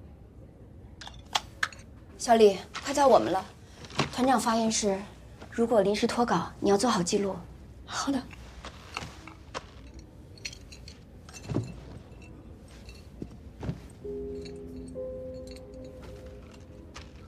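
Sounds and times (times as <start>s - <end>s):
low steady hum: 0.0s - 17.2s
bunch of house keys jangling: 1.0s - 1.9s, 8.3s - 17.2s
speech: 2.2s - 3.6s, 4.2s - 8.4s.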